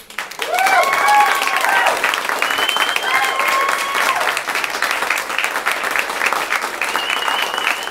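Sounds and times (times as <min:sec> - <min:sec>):
audience applause: 0:00.0 - 0:07.8
whoops and cheers: 0:00.4 - 0:04.5, 0:06.8 - 0:07.8.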